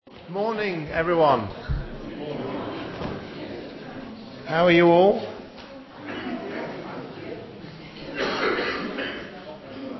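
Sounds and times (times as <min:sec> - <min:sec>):
low murmur of voices: 0:00.1 - 0:09.9
room noise: 0:00.1 - 0:09.9
speech: 0:00.3 - 0:01.8, 0:04.5 - 0:05.4
person coughing in the audience at a morning church service in Pershore: 0:08.2 - 0:09.3.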